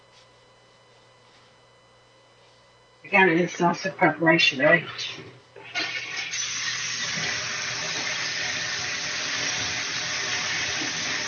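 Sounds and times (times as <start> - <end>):
speech: 3.1 - 5.4
tap water running over hands being washed: 4.9 - 11.2.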